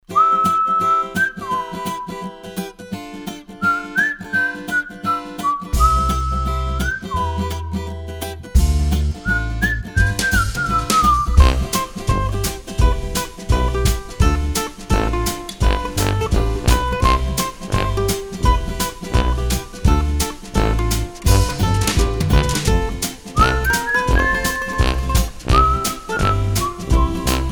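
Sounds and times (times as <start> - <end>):
guitar picking: 0.0 - 27.5
person whistling: 0.1 - 2.7, 3.6 - 8.1, 9.0 - 15.2, 18.4 - 20.7, 21.3 - 27.5.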